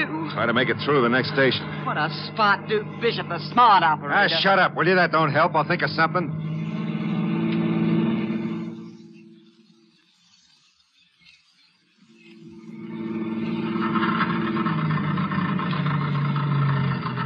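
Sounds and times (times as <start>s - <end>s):
car engine running out of gas: 0.0s - 9.3s, 12.7s - 17.2s
speech: 0.4s - 6.5s.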